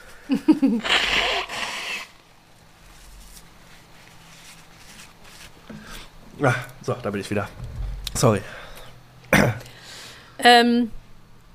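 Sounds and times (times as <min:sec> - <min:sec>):
speech: 0:00.3 - 0:01.2, 0:06.4 - 0:08.6, 0:10.4 - 0:11.0
forceful nose blow: 0:00.7 - 0:02.2.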